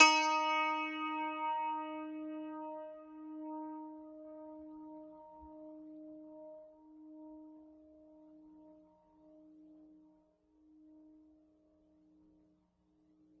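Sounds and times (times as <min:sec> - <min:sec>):
zither note D4: 0:00.0 - 0:03.6.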